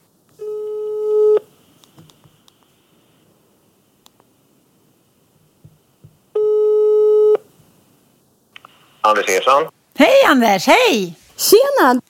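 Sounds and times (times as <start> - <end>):
faint noise: 0.0 - 12.0
telephone ringback tone while placing a call: 0.4 - 1.5, 6.4 - 7.4
speech: 9.1 - 12.0.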